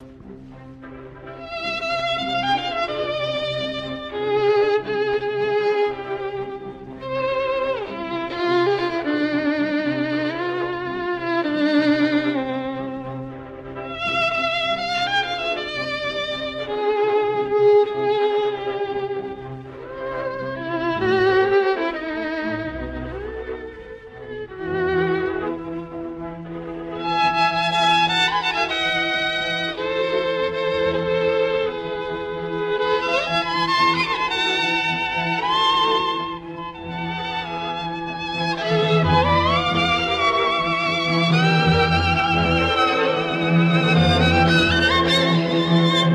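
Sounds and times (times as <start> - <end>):
live violin playing: 0.0 - 46.1.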